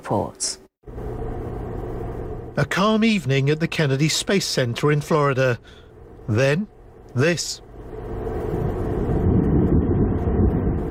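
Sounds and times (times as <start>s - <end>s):
speech: 0.1s - 0.6s, 2.6s - 7.6s
rocket exploding during engine test: 8.6s - 10.8s.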